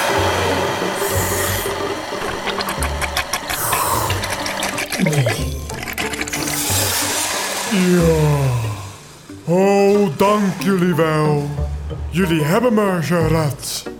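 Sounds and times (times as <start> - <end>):
water sprayed from a trunk to clean a whale's blowhole: 0.0 - 9.3
rapid clicking patter: 1.7 - 7.2
speech: 10.4 - 11.5, 12.1 - 13.7.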